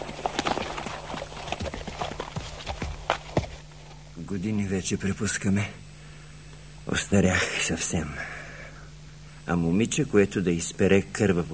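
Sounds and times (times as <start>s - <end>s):
horse hooves galloping: 0.0s - 4.1s
faint steady hum: 0.0s - 11.5s
speech: 4.3s - 5.8s, 6.9s - 8.3s, 9.5s - 11.5s.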